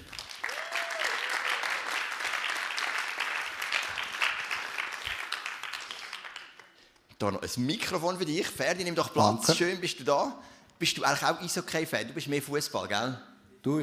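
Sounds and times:
crowd applauding a guest on stage: 0:00.0 - 0:06.9
speech: 0:07.2 - 0:13.8.

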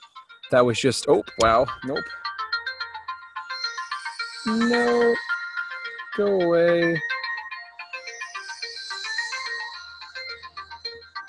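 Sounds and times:
speech: 0:00.5 - 0:02.2, 0:04.4 - 0:05.3, 0:06.2 - 0:07.1
phone ringtone playing a bright electronic melody: 0:01.3 - 0:11.2.

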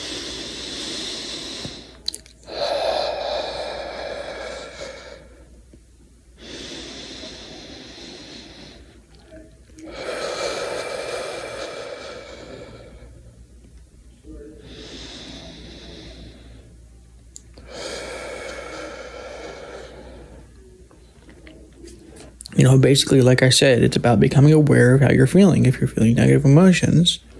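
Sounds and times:
slow deep breaths taken as a calming practice: 0:00.0 - 0:13.4, 0:14.2 - 0:22.5
speech: 0:22.6 - 0:27.3.

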